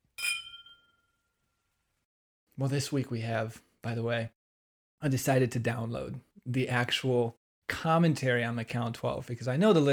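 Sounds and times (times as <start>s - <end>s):
glasses clinking in a toast: 0.1s - 1.1s
speech: 2.6s - 4.4s, 5.0s - 9.9s.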